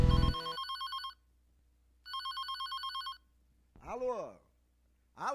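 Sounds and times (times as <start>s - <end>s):
telephone ringing: 0.1s - 1.2s, 2.1s - 3.3s.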